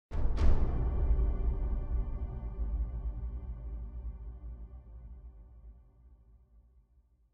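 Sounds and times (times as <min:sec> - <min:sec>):
big drums: 0:00.1 - 0:03.8.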